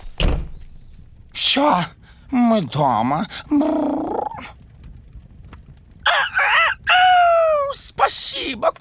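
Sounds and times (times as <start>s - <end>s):
speech: 1.5s - 4.6s
rooster crowing: 6.1s - 7.7s.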